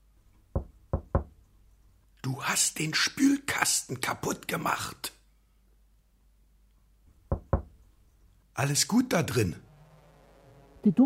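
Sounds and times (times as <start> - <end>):
gentle knocking on a refrigerator door: 0.6 - 1.3, 7.3 - 7.7
speech: 2.3 - 5.2, 8.6 - 9.7, 10.8 - 11.0.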